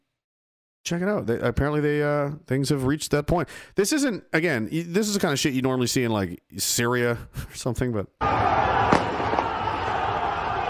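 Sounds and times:
speech: 0.9 - 9.1
crowd roaring in a riot: 8.2 - 10.6
explosive bangs in a riot: 8.3 - 9.9.

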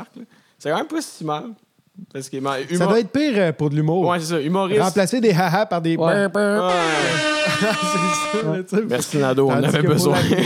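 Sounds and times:
speech: 0.2 - 10.4
voice imitating a honking horn: 6.7 - 8.6
laughter: 7.0 - 10.4.

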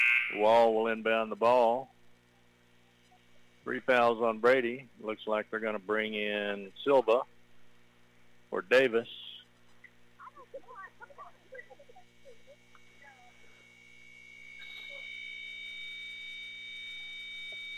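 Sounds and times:
thin high-pitched whine: 0.0 - 7.3, 11.4 - 17.7
electrical mains hum on a broadcast: 0.0 - 17.7
speech: 0.3 - 2.0, 3.6 - 7.3, 8.5 - 9.3
laughter: 10.2 - 13.4.

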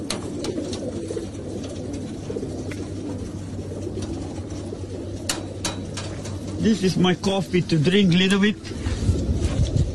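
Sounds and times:
pigeons cooing: 0.0 - 9.9
speech: 6.6 - 8.8.

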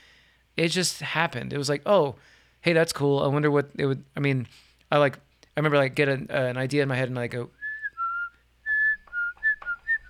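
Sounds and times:
speech: 0.6 - 7.6
person whistling a short melody: 7.6 - 10.0.

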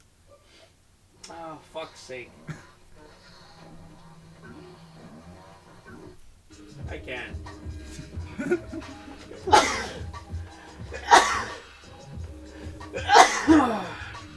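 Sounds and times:
murmuring voices: 1.2 - 14.3
laughter: 1.3 - 6.1, 6.7 - 14.3
speech: 1.6 - 2.6, 6.6 - 10.2
person sneezing: 7.8 - 11.8, 12.6 - 14.3.

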